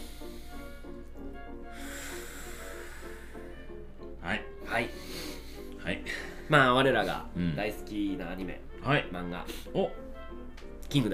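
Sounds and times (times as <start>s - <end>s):
slow deep breath drawn in through the nose: 0.0s - 1.0s, 1.7s - 3.6s, 4.9s - 6.4s
speech: 4.3s - 5.0s, 6.5s - 10.0s, 10.9s - 11.1s.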